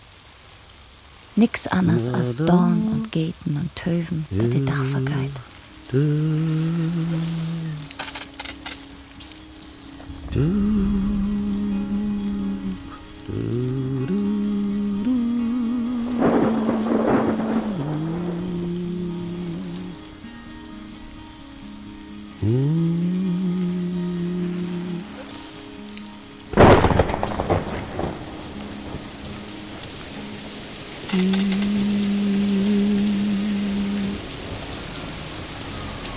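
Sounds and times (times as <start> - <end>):
rain hissing: 0.0 - 36.1
speech: 1.4 - 8.0, 10.3 - 11.2
sustained droning musical tones: 4.3 - 36.1
thunder: 10.0 - 13.4, 16.1 - 18.8, 26.6 - 29.1.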